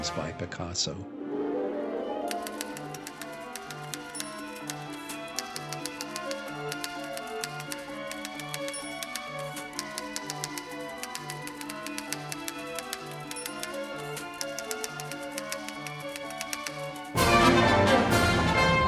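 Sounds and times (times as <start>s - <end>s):
speech: 0.0s - 1.2s
orchestral passage from a ballet score with pulsing low figure: 0.0s - 18.8s
typewriter clacking in a ballet score orchestra: 2.3s - 17.2s.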